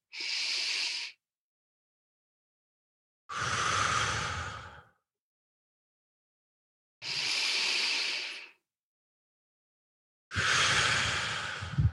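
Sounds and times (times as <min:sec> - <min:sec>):
slow deliberate box breathing inhales and exhales: 0:03.3 - 0:05.0, 0:07.0 - 0:08.6, 0:10.3 - 0:11.9.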